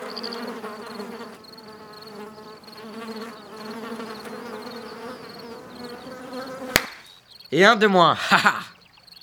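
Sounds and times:
mosquito buzzing: 0:00.0 - 0:07.2
sharp smack: 0:06.7 - 0:07.1
speech: 0:07.5 - 0:08.7
laughter: 0:07.6 - 0:08.8.

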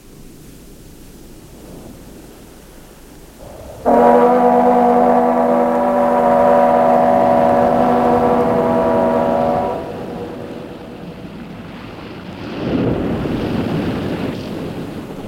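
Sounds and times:
rushing water: 0:00.0 - 0:15.2
surf surging: 0:00.0 - 0:15.2
waves: 0:00.0 - 0:15.2
wind: 0:00.0 - 0:15.2
deep droning boat horn or engine tone: 0:03.3 - 0:11.6.

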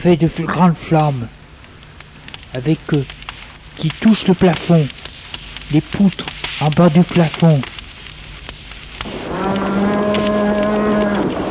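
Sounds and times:
speech: 0:00.0 - 0:01.4, 0:02.5 - 0:03.2, 0:03.8 - 0:05.0, 0:05.7 - 0:07.7
cows stamping hooves in a burning building: 0:00.0 - 0:11.4
steady rumbling noise: 0:00.0 - 0:11.4
cow mooing: 0:09.2 - 0:11.4.

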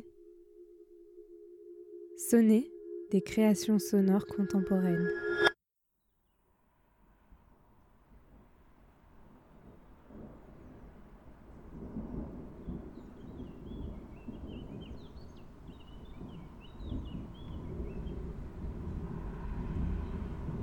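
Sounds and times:
speech: 0:02.2 - 0:05.5
storm thunder rumbling: 0:09.4 - 0:20.6.

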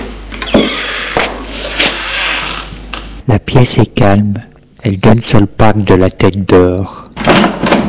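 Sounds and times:
office door opening: 0:00.3 - 0:01.3
speech: 0:03.6 - 0:07.7.

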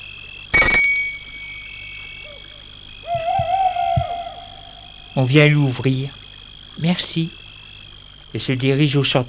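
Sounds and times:
bell at a gate ringing: 0:00.6 - 0:02.5
soft hoot-like calls: 0:01.8 - 0:05.4
speech: 0:05.2 - 0:06.2, 0:06.8 - 0:07.4, 0:08.4 - 0:09.2.

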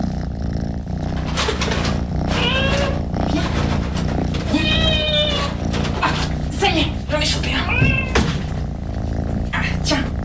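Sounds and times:
steady low hum: 0:00.0 - 0:10.2
cat meowing: 0:02.3 - 0:06.4, 0:07.0 - 0:08.6.

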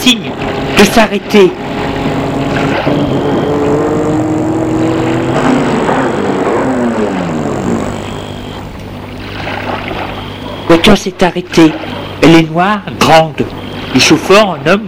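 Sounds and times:
speech: 0:00.1 - 0:03.8, 0:10.8 - 0:14.8
car driving past: 0:01.6 - 0:10.4.

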